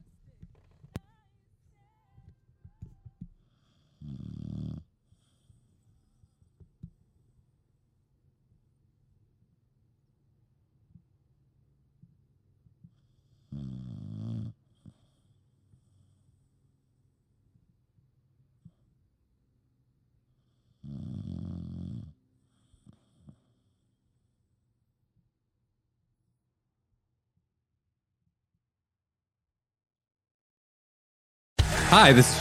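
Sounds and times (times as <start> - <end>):
dog snoring loudly into a microphone: 3.4 - 6.4, 12.9 - 16.4, 20.4 - 23.8
speech: 31.9 - 32.3.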